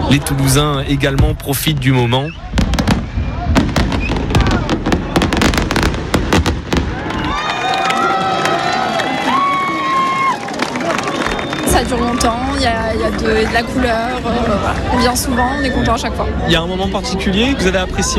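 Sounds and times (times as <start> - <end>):
fireworks display bursting, crackling and popping: 0.0 - 7.7
crowd cheering and shouting excitedly: 0.0 - 18.1
speech: 0.1 - 2.6, 11.9 - 18.1.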